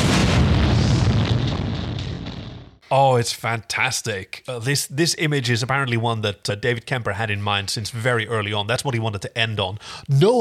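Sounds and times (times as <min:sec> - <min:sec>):
massive explosion roaring with deep bass rumble and crackling: 0:00.0 - 0:02.8
speech: 0:02.9 - 0:10.3.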